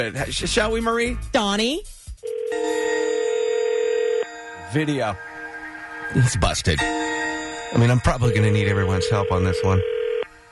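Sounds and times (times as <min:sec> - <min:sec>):
speech: 0:00.0 - 0:02.8, 0:04.7 - 0:05.3, 0:06.1 - 0:07.0, 0:07.7 - 0:10.0
telephone ringing with a bright electronic tone: 0:02.2 - 0:04.5, 0:07.8 - 0:10.3.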